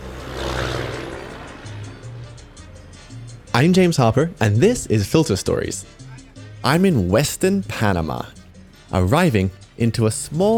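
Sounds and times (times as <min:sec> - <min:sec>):
old school bus engine drone in Western Panama: 0:00.0 - 0:04.8
road roar of old school bus in motion in Western Panama: 0:00.0 - 0:06.6
speech: 0:03.6 - 0:06.0, 0:06.6 - 0:10.5.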